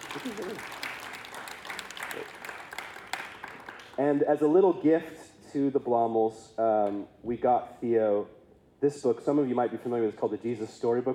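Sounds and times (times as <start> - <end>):
audience clapping: 0.0 - 4.0
speech: 0.2 - 0.8, 4.0 - 11.1.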